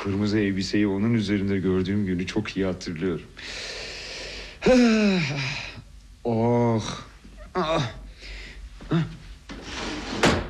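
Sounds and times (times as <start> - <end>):
speech: 0.0 - 3.8, 4.6 - 8.0, 8.9 - 9.2
person vocalizing: 4.6 - 8.1
underwear drawer pulled open with a wooden scrape in a bedroom: 9.5 - 10.4.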